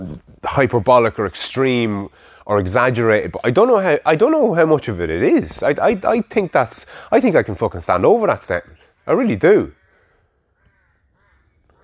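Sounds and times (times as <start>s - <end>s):
speech: 0.6s - 9.8s
crows cawing: 9.7s - 11.8s.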